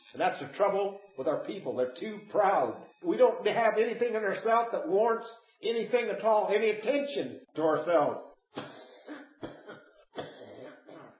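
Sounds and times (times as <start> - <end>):
speech: 0.1 - 8.6
preacher coughing during a sermon: 8.6 - 11.1.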